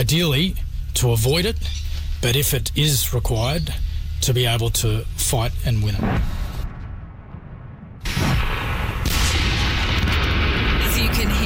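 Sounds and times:
speech: 0.0 - 6.4
artillery fire during a military exercise: 6.0 - 11.4
sniper gunfire during a military exercise: 6.0 - 11.4.

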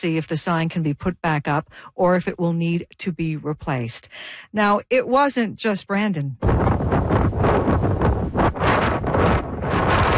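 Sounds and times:
speech: 0.0 - 6.7
strong windstorm gusts: 6.4 - 10.1.

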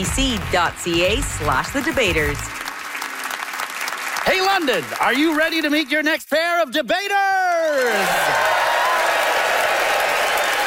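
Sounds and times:
speech: 0.0 - 2.6, 4.2 - 8.5
live audience in London applauding: 0.0 - 10.6
live audience in London whooping: 7.7 - 10.6.

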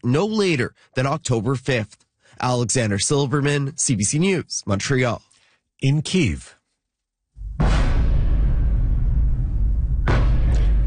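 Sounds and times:
speech: 0.0 - 6.6
explosions in the night sky: 7.4 - 10.8.

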